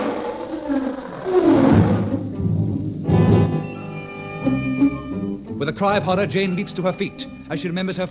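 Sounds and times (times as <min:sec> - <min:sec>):
lion roaring deeply in the jungle: 0:00.0 - 0:02.2
dense wild jungle background: 0:00.0 - 0:08.0
speech: 0:05.6 - 0:08.0.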